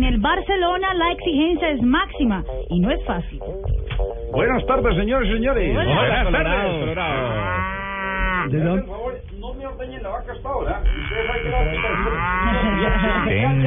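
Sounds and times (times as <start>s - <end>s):
speech: 0.2s - 3.7s, 4.3s - 7.6s, 8.4s - 9.0s, 9.7s - 13.6s
dairy cow mooing: 5.8s - 8.6s, 10.8s - 13.6s
laughter: 11.6s - 13.6s.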